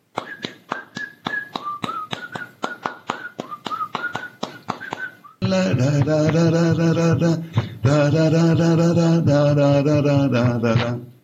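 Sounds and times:
steady rhythmic tapping: 0.0s - 11.0s
man whistling a wandering tune: 0.2s - 5.4s.

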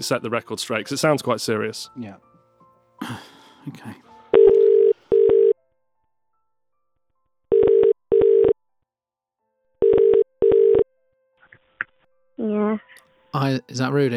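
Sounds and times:
speech: 0.0s - 2.3s, 3.0s - 4.0s, 12.4s - 14.1s
telephone ringing tone after dialing: 4.4s - 5.6s, 7.5s - 8.6s, 9.8s - 10.8s.

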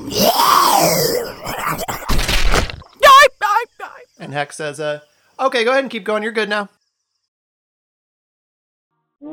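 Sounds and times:
loud guttural snarling growl: 0.0s - 2.0s
crashing splintering noise: 2.0s - 2.9s
speech: 4.4s - 6.8s.

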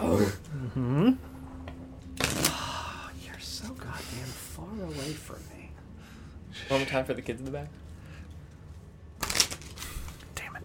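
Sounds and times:
speech: 0.2s - 1.2s, 6.7s - 7.9s
playing cards being shuffled: 2.2s - 2.6s, 9.2s - 10.4s.

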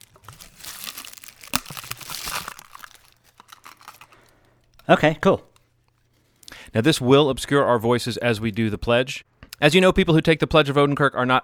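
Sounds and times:
tissue paper crinkling over cardboard tube: 0.0s - 6.4s
speech: 4.9s - 5.5s, 6.8s - 11.4s.

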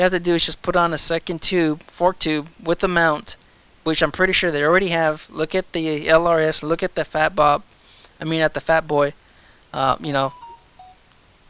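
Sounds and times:
speech: 0.0s - 10.4s
short electronic phone beeps: 10.2s - 11.0s.

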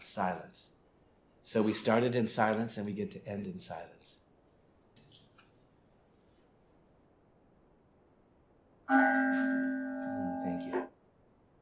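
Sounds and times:
speech: 0.2s - 0.8s, 1.4s - 4.2s, 8.9s - 9.6s
meditation bell ringing: 8.9s - 10.8s.

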